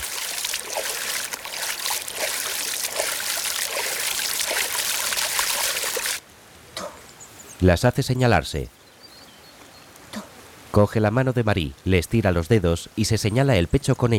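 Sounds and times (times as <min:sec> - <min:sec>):
girl splashing river water with hands: 0:00.0 - 0:06.2
speech: 0:07.6 - 0:08.8, 0:10.8 - 0:14.1.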